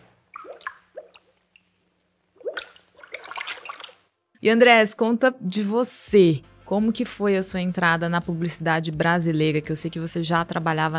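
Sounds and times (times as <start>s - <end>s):
water dripping from a leaky faucet: 0.3s - 1.8s, 2.4s - 4.0s
speech: 4.4s - 10.9s.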